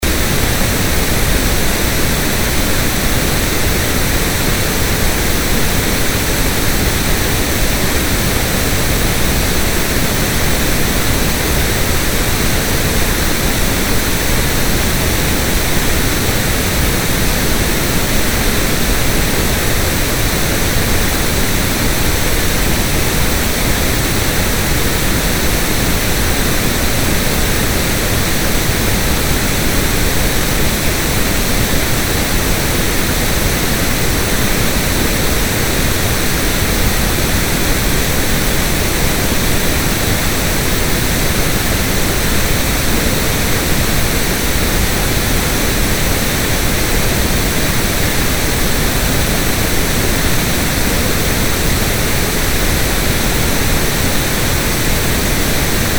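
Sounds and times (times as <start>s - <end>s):
pink noise: 0.0s - 55.9s.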